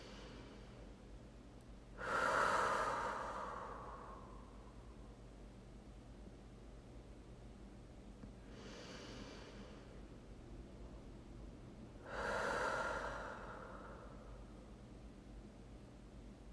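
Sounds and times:
deep breaths in through the nose and out through the mouth: 0:00.0 - 0:01.0, 0:02.0 - 0:04.9, 0:08.4 - 0:10.0, 0:12.0 - 0:14.6.

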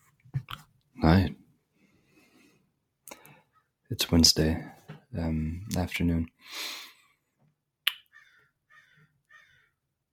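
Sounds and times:
speech: 0:01.0 - 0:01.4, 0:04.1 - 0:06.8
crows cawing: 0:08.1 - 0:09.8.

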